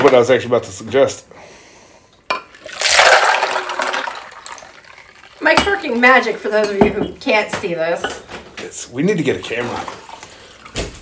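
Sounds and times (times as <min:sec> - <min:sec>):
speech: 0:00.0 - 0:01.5, 0:05.4 - 0:10.0
cup clinking: 0:02.3 - 0:07.2
drink being poured into a cup: 0:02.5 - 0:06.5.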